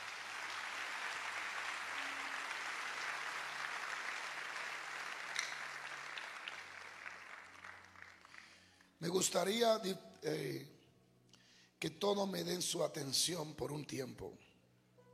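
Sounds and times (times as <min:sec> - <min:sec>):
crowd applauding: 0:00.0 - 0:08.8
speech: 0:09.0 - 0:10.8, 0:11.8 - 0:14.5.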